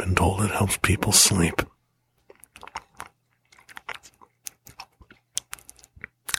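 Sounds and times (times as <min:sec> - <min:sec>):
speech: 0:00.1 - 0:01.7
wet mouth clicks and crunchy smacking imitating chewing a bottle cap: 0:02.2 - 0:06.3.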